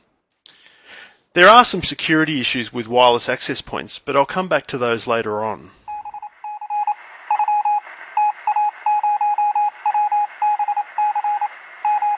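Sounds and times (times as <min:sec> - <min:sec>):
speech: 0:01.4 - 0:05.8
dial-up modem dialing touch-tone beeps over a telephone line: 0:05.9 - 0:12.1.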